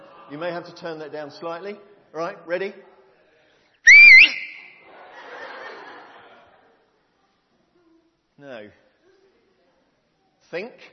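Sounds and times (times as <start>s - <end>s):
soft diffuse murmur: 0.0s - 10.9s
speech: 0.3s - 2.9s, 8.4s - 8.9s, 10.5s - 10.9s
person whistling: 3.9s - 4.8s
laughter: 4.6s - 7.0s.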